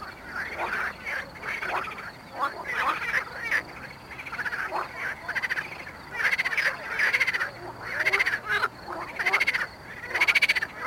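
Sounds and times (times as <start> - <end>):
Pelophylax ridibundus marsh frogs croaking in chorus at Mali lag, Botevgrad, Bulgaria: 0.0 - 10.8.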